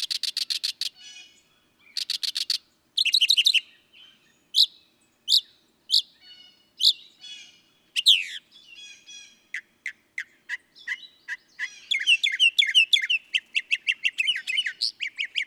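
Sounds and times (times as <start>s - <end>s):
Northern mockingbird song: 0.0s - 15.4s.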